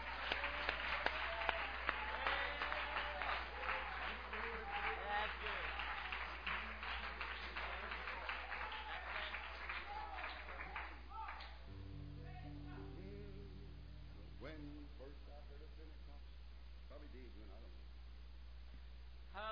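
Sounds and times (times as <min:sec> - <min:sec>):
room full of people clapping: 0:00.0 - 0:13.0
murmur of voices: 0:00.0 - 0:16.1.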